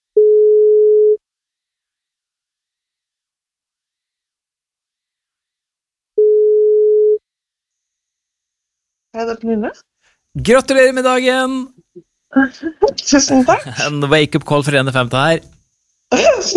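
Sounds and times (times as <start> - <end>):
telephone ringback tone on an outgoing call: 0.2 - 1.2, 6.2 - 7.2
speech: 9.2 - 15.5, 16.1 - 16.5.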